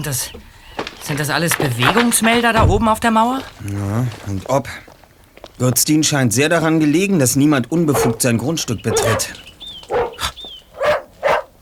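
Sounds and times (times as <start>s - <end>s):
speech: 0.0s - 4.9s, 5.6s - 9.4s
dogs barking in quick sharp bursts: 7.7s - 11.6s.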